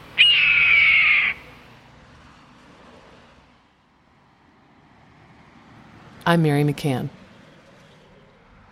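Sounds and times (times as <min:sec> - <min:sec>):
red-tailed hawk scream: 0:00.2 - 0:01.5
speech: 0:06.3 - 0:07.2.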